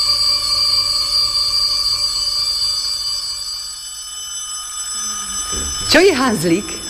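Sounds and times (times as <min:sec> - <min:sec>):
school bell ringing: 0:04.6 - 0:06.8
speech: 0:05.9 - 0:06.8.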